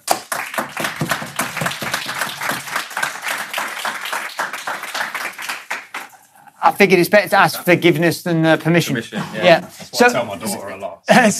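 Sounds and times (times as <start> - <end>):
audience applause with many hands clapping: 0.0 - 6.2
speech: 6.7 - 11.3.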